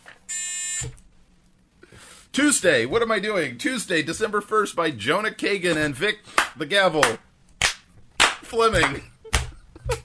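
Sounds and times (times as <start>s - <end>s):
loud harsh game show buzzer: 0.3s - 0.9s
speech: 0.8s - 1.0s, 2.4s - 7.3s, 8.5s - 9.1s.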